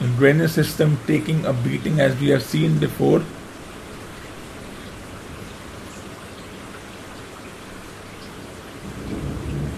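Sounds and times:
heavy rain pouring during a storm over Delhi streets: 0.0s - 9.7s
speech: 0.2s - 3.4s
thunder rumbling during a storm over Delhi streets: 8.8s - 9.7s.

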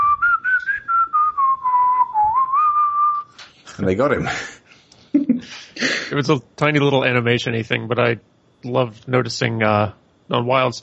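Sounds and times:
lone whistler whistling a slow mournful spaghetti western melody: 0.0s - 3.4s
speech: 3.8s - 4.6s, 5.8s - 10.8s.

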